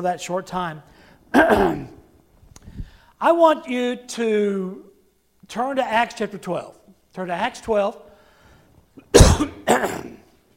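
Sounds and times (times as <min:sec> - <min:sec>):
speech: 0:00.0 - 0:02.0, 0:03.2 - 0:04.9, 0:05.5 - 0:08.1, 0:09.0 - 0:10.2
harsh forceful coughs caused by allergies: 0:01.3 - 0:02.0, 0:09.1 - 0:10.3.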